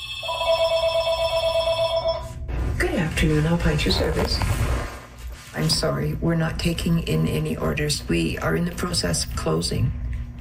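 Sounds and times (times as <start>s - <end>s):
electronic telephone ringing at a shoe repair shop: 0.0s - 2.4s
low hum: 0.0s - 10.4s
speech: 3.2s - 4.8s, 5.5s - 10.0s.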